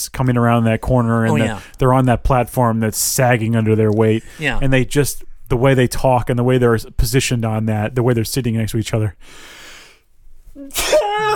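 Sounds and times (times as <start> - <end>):
speech: 0.0 - 9.6, 10.6 - 11.3
single loud sneeze: 1.3 - 1.6, 10.7 - 11.3.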